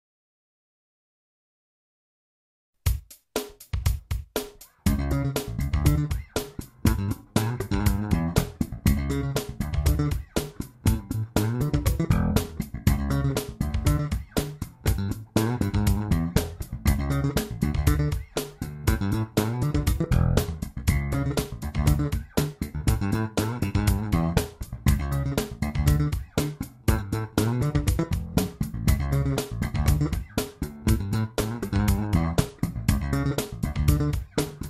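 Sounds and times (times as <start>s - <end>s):
bass guitar double thumb in E: 4.9s - 34.6s.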